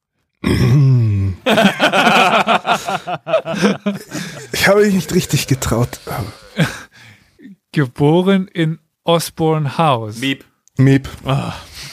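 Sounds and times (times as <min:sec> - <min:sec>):
loud gravelly throat clearing: 0:00.4 - 0:01.4, 0:04.1 - 0:06.9
laughter: 0:01.4 - 0:06.8
speech: 0:01.5 - 0:04.0, 0:04.7 - 0:06.5, 0:07.8 - 0:11.9
short choppy vocal bursts: 0:04.1 - 0:06.9.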